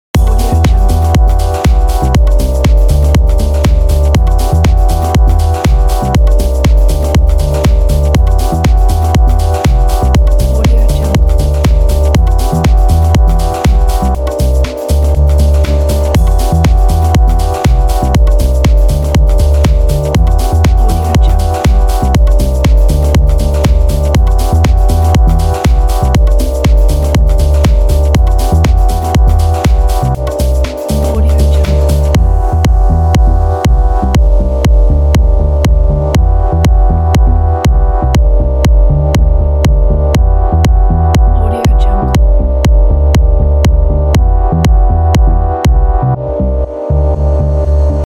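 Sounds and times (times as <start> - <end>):
fashion house music loop: 0.2 - 48.0.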